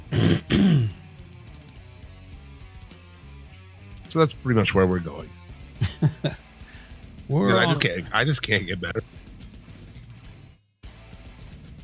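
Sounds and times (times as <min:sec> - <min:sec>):
person clearing throat: 0:00.0 - 0:01.0
speech: 0:04.1 - 0:05.4, 0:06.0 - 0:06.4, 0:07.3 - 0:09.2
laughter: 0:05.8 - 0:06.4, 0:07.3 - 0:09.0.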